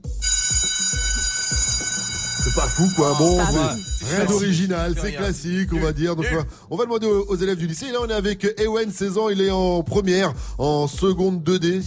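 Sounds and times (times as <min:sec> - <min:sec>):
electric school bell ringing at a high school in Brest: 0:00.1 - 0:04.5
speech: 0:02.6 - 0:11.8.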